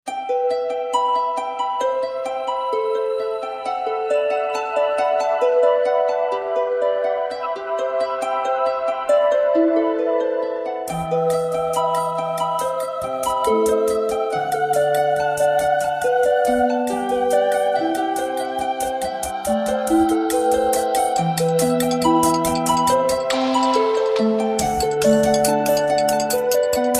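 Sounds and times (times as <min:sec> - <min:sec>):
harp: 0:00.0 - 0:26.9
melodic bass: 0:10.9 - 0:26.9.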